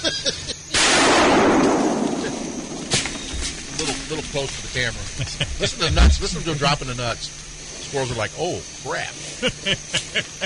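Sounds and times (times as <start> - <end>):
speech: 0.0 - 0.5, 4.3 - 10.4
laughter: 0.0 - 0.7, 3.7 - 7.1, 9.2 - 10.4
gunshot fired while hunting squirrels in the woods: 0.7 - 3.7.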